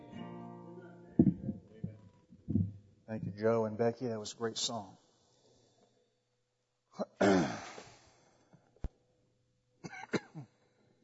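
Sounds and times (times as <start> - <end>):
speech: 3.1 - 5.0
person coughing: 7.0 - 7.8, 9.8 - 10.5
throat clearing: 7.0 - 7.8, 9.9 - 10.5.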